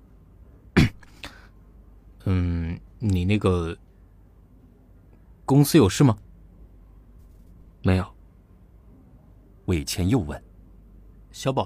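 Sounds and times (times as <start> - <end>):
acted dry cough: 0.7 - 1.3
speech: 2.2 - 3.8, 5.5 - 6.2, 7.8 - 8.1, 9.7 - 10.5, 11.4 - 11.6.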